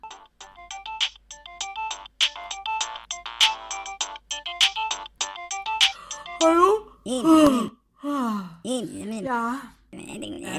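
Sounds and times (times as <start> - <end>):
mobile phone ringtone playing a bright rapid electronic melody: 0.0 - 6.4
speech: 6.4 - 7.7, 8.7 - 10.5.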